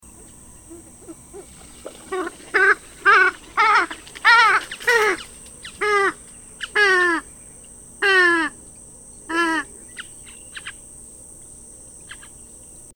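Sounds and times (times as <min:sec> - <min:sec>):
purple swamphen calling: 0:00.0 - 0:08.6, 0:09.3 - 0:10.9.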